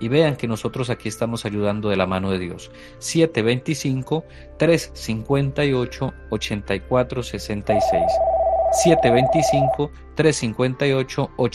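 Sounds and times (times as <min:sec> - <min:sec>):
speech: 0:00.0 - 0:11.5
telephone ringing with an incoming call: 0:07.7 - 0:09.8.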